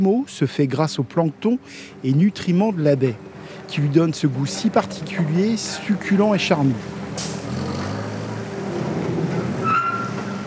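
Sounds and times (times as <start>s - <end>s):
speech: 0.0s - 7.6s
forklift engine drone unloading mussels from a boat at a dock: 1.5s - 10.4s
high-pitched mechanical squeal as the load shifts: 9.6s - 10.4s.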